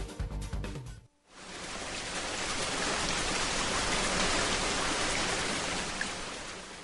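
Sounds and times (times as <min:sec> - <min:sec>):
steady dense rain falling: 0:01.3 - 0:06.8.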